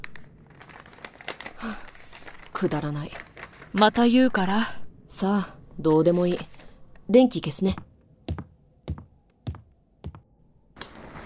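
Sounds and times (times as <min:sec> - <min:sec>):
paper love letter being crumpled: 0:00.0 - 0:03.9
speech: 0:02.6 - 0:06.5, 0:07.1 - 0:07.8.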